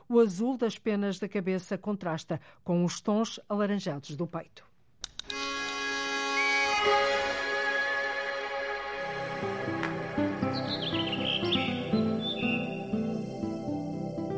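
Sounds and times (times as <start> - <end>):
speech: 0.1 - 4.7
steady sustained tonal backing: 5.4 - 14.3
rufous-tailed rock thrush song: 10.2 - 13.7.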